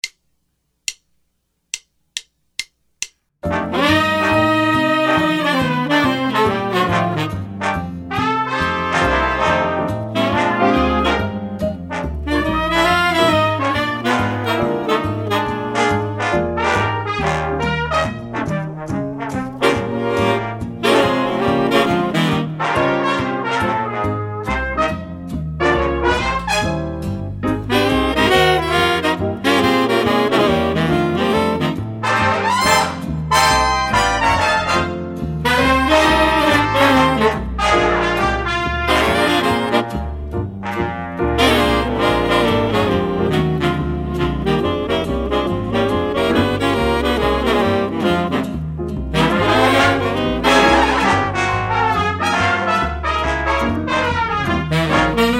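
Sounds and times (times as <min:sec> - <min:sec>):
drum set: 0:01.0 - 0:55.3.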